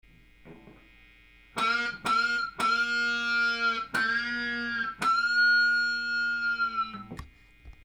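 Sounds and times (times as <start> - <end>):
guitar picking: 1.6 - 7.3.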